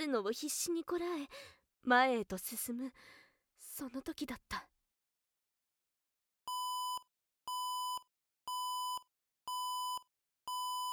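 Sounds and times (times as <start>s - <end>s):
speech: 0.0s - 4.7s
loud electronic alarm beeping in a corridor: 6.5s - 10.9s.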